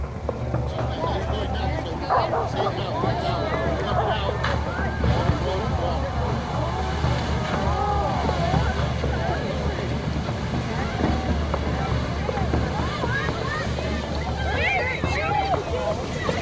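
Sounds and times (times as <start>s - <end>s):
loud low rumble of masonry arch bridge collapsing into flooded river: 0.0s - 16.4s
rushing water of flood-swollen river: 0.0s - 16.4s
voices murmuring: 0.0s - 16.4s
wind buffeting the microphone: 0.0s - 16.4s.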